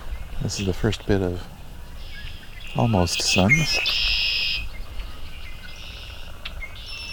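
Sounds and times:
birds singing outdoors after rain: 0.0 - 7.1
speech: 0.4 - 1.6, 2.8 - 4.1
bright sustained high bird trill: 1.9 - 7.1.

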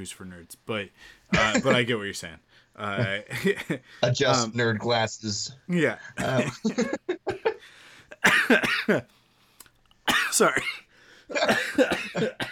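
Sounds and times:
speech: 0.0 - 7.1, 8.2 - 9.2, 10.3 - 12.4
person coughing in harsh bursts: 1.3 - 1.8, 6.2 - 7.6, 8.2 - 9.0, 10.1 - 12.4
person laughing: 1.4 - 1.8, 6.2 - 7.6.

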